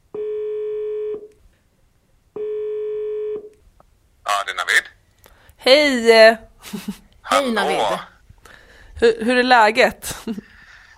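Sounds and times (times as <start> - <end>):
ringback tone from an outgoing phone call: 0.2 - 1.3, 2.4 - 3.5
speech: 5.6 - 8.1, 9.0 - 10.4.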